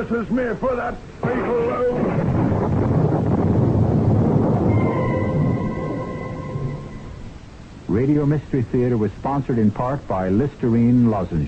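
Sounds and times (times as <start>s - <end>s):
speech: 0.0s - 3.4s, 7.9s - 11.4s
heavy storm wind: 1.0s - 8.0s
deep rumbling thunder: 1.2s - 8.0s
thin howling whine: 1.2s - 8.4s.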